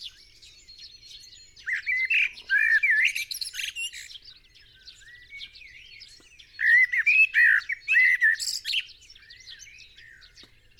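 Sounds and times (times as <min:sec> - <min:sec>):
common blackbird Turdus merula song: 0:00.0 - 0:10.7.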